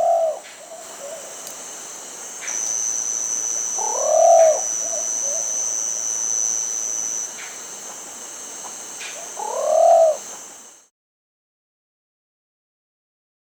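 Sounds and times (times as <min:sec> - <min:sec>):
Plumbeous pigeon cooing in South America: 0:00.0 - 0:01.4, 0:03.6 - 0:06.2, 0:09.2 - 0:10.3
steady high-pitched drone: 0:02.2 - 0:10.8.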